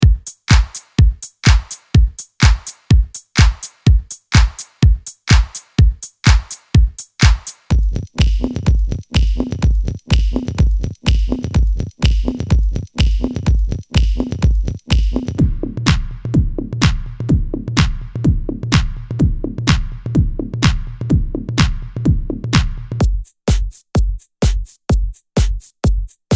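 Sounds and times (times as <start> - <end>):
snare drum hits: 0.0 - 7.7
drums: 0.0 - 26.3
claps: 0.5 - 4.7, 5.3 - 6.6, 7.2 - 7.6, 19.7 - 20.0, 22.6 - 22.9.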